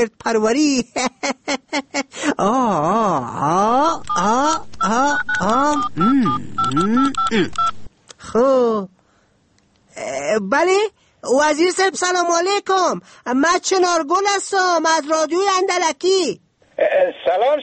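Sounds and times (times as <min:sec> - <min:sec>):
speech: 0:00.0 - 0:06.1, 0:10.4 - 0:17.6
long wavering melodic voice-like tone: 0:03.2 - 0:07.6
touch-tone dialing of a telephone number: 0:04.0 - 0:07.9.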